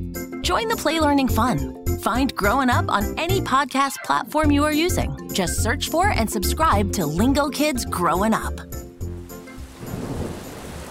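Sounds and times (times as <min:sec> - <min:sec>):
speech: 0:00.5 - 0:08.8
heavy rain during a storm: 0:09.5 - 0:10.8
deep rumble of thunder during a storm: 0:09.7 - 0:10.8.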